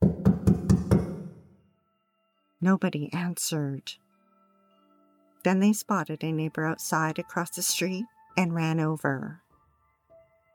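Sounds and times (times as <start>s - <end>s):
heavy knocks on the wooden front door of a house: 0.0s - 1.4s
speech: 2.6s - 4.0s, 5.4s - 9.4s.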